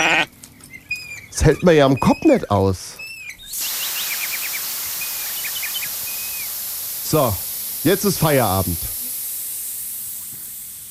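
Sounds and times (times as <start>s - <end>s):
speech: 1.4s - 3.0s, 7.1s - 8.9s
air hissing out of a punctured tire: 3.5s - 10.8s.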